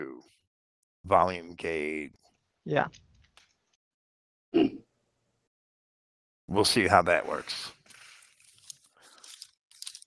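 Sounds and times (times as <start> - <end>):
speech: 1.0 - 3.0, 6.5 - 7.8
paper pages being turned: 7.1 - 10.0.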